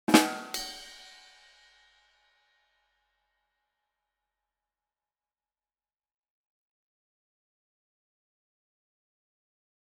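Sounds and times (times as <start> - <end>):
drum rimshot: 0.1 - 1.1.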